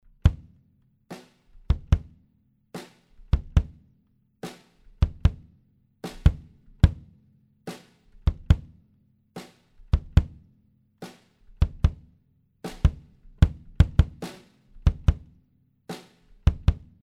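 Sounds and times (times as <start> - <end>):
kick drum: 0.1 - 0.6, 1.6 - 2.2, 3.2 - 3.8, 4.9 - 5.5, 6.2 - 7.1, 8.2 - 8.8, 9.8 - 10.4, 11.5 - 12.1, 12.7 - 14.2, 14.8 - 15.4, 16.4 - 17.0
snare drum: 1.1 - 2.1, 2.8 - 3.8, 4.4 - 7.1, 7.7 - 8.7, 9.4 - 10.4, 11.0 - 12.1, 12.7 - 15.3, 15.9 - 17.0.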